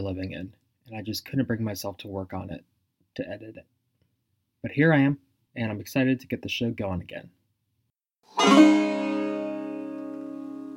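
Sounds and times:
speech: 0:00.0 - 0:03.8, 0:04.6 - 0:07.4, 0:08.2 - 0:08.9
banjo in sawmill tuning strumming a single chord: 0:08.3 - 0:10.7.

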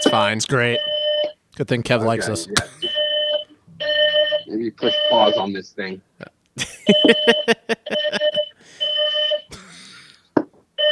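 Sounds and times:
speech: 0:00.1 - 0:00.9, 0:01.6 - 0:02.8, 0:04.5 - 0:08.2
laughter: 0:02.5 - 0:03.0, 0:06.6 - 0:08.5
smoke alarm beeping: 0:02.8 - 0:05.4, 0:06.8 - 0:09.5.

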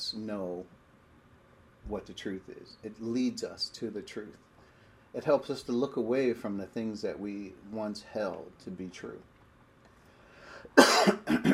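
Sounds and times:
speech: 0:00.1 - 0:00.8, 0:01.8 - 0:04.5, 0:05.1 - 0:09.3, 0:10.7 - 0:11.5
person with a sore throat coughing: 0:10.8 - 0:11.5.

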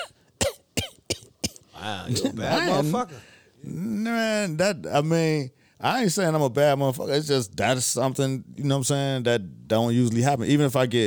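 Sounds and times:
harsh raspy coughs: 0:00.0 - 0:02.8
speech: 0:01.8 - 0:11.0.

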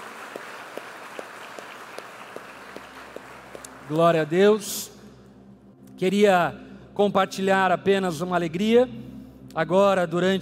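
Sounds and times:
sharper, louder claps from the audience: 0:00.0 - 0:04.1
audience applauding: 0:00.0 - 0:04.2
speech: 0:03.9 - 0:04.9, 0:06.0 - 0:10.3.

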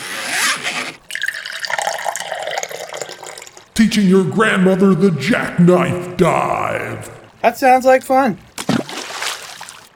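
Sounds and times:
water pouring into a swimming pool from a hose: 0:01.0 - 0:03.8, 0:08.6 - 0:09.9
speech: 0:03.8 - 0:08.5.

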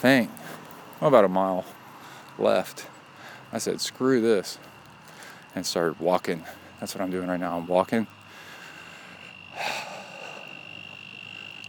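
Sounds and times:
speech: 0:00.0 - 0:00.4, 0:01.0 - 0:01.8, 0:02.4 - 0:02.9, 0:03.5 - 0:04.7, 0:05.5 - 0:08.2
steady high insect-like drone: 0:02.5 - 0:11.6
frog croaking: 0:08.1 - 0:11.6.

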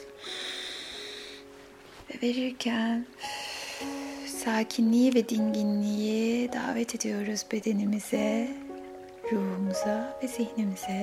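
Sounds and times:
long deep inhale through the nose or mouth: 0:00.2 - 0:01.5, 0:03.2 - 0:04.3
speech: 0:02.1 - 0:08.6, 0:09.3 - 0:11.0.

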